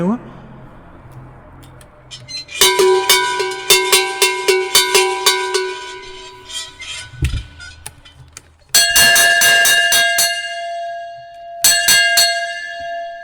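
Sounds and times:
sheet-metal cowbell clanking, shaken in quick rhythmic strokes: 0:02.2 - 0:13.2
cast cowbell ringing, shaken rapidly: 0:02.5 - 0:06.9, 0:08.7 - 0:13.2.

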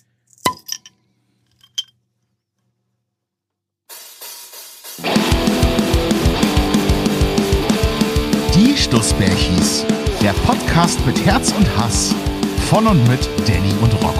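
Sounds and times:
glass bottle clinking as it is opened: 0:00.3 - 0:02.0
loud music with a steady beat: 0:04.9 - 0:14.1
speech: 0:08.9 - 0:14.1.

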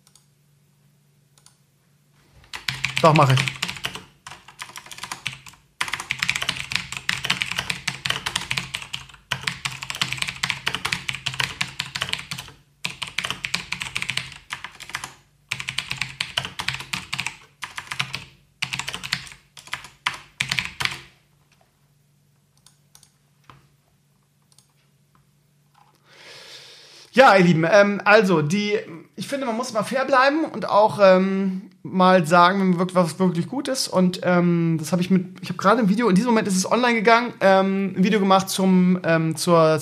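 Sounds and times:
typing on a computer keyboard: 0:02.5 - 0:21.1, 0:22.6 - 0:23.2
speech: 0:03.0 - 0:03.6, 0:27.3 - 0:39.8.

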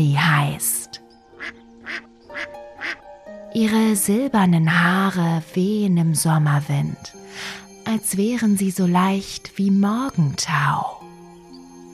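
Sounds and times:
speech: 0:00.0 - 0:00.8, 0:03.6 - 0:11.0
duck quacking: 0:01.4 - 0:03.0.

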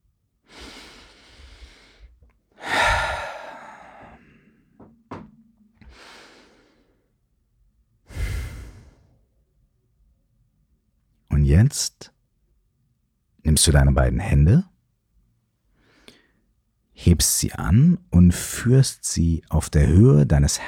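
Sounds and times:
deep slow breathing in and out during a guided relaxation exercise: 0:00.5 - 0:04.8, 0:05.8 - 0:07.1, 0:08.1 - 0:09.3
knock: 0:04.8 - 0:05.4
speech: 0:11.5 - 0:12.2, 0:13.5 - 0:14.7, 0:17.0 - 0:20.6.

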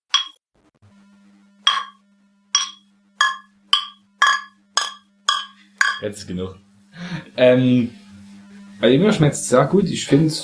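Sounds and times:
beer glasses clinking in a toast: 0:00.1 - 0:00.4, 0:01.7 - 0:02.0, 0:02.6 - 0:06.0
speech: 0:06.0 - 0:08.0, 0:08.8 - 0:10.4.

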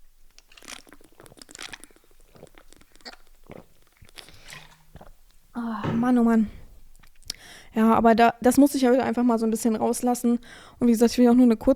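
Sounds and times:
person sipping and swallowing a drink: 0:00.5 - 0:07.4
speech: 0:06.0 - 0:06.6, 0:07.8 - 0:11.7.

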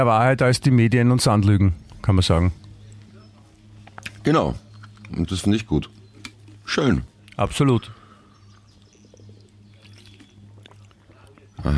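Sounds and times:
speech: 0:00.0 - 0:02.6, 0:04.2 - 0:06.0, 0:06.7 - 0:08.0
low electrical hum: 0:00.0 - 0:11.7
person gulping water: 0:09.8 - 0:11.7.

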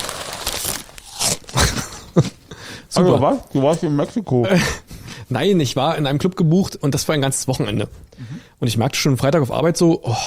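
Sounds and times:
crunching puffed rice eaten from the bag: 0:00.0 - 0:02.3
crinkly rustling of the packaging: 0:00.0 - 0:02.4
speech: 0:03.0 - 0:10.2.

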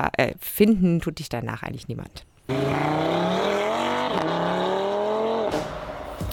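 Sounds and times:
speech: 0:00.0 - 0:03.3
car engine revving hard: 0:02.5 - 0:06.3.

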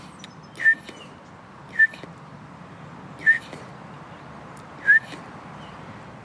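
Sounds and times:
person whistling imitation of bullfinch piping call: 0:03.2 - 0:03.4, 0:04.8 - 0:05.2.

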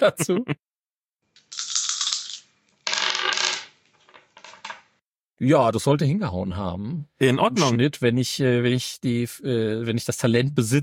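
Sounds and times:
speech: 0:00.0 - 0:00.6, 0:05.4 - 0:10.8
twenty-sided dice clattering across a surface: 0:01.5 - 0:04.9.

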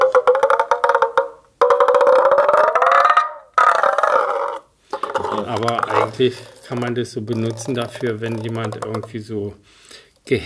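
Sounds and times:
sinew wound around wood with a membrane being twisted, creaking squeals: 0:00.0 - 0:06.9
speech: 0:05.4 - 0:10.4.

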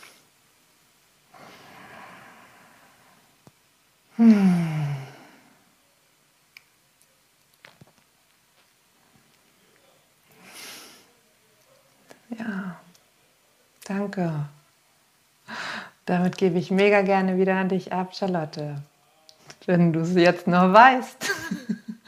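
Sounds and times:
deep breathing during a breathing exercise: 0:01.3 - 0:03.3, 0:04.1 - 0:05.7, 0:15.5 - 0:16.0
speech: 0:04.2 - 0:04.6, 0:14.2 - 0:14.5, 0:16.1 - 0:18.9, 0:19.7 - 0:21.7.

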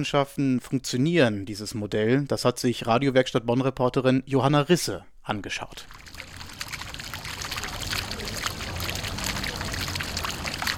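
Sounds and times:
speech: 0:00.0 - 0:06.0
fountain water pouring from spouts and splashing onto ground in an old town: 0:05.9 - 0:10.7.

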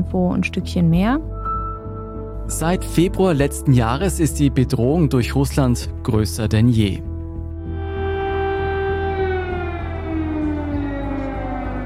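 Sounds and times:
speech: 0:00.0 - 0:01.4, 0:02.5 - 0:07.1
air raid sirens wailing: 0:07.6 - 0:11.8.

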